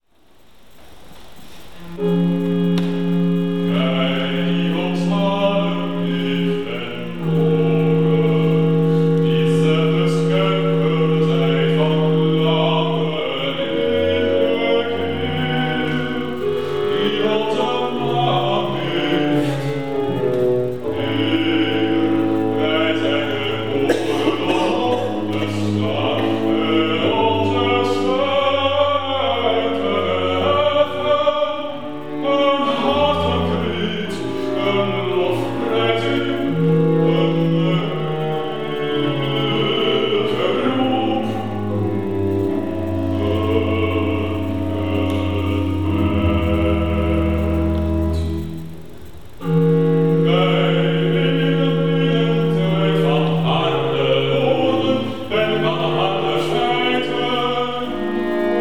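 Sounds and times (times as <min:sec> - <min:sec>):
bass voice singing recitative: 0:01.8 - 0:58.6.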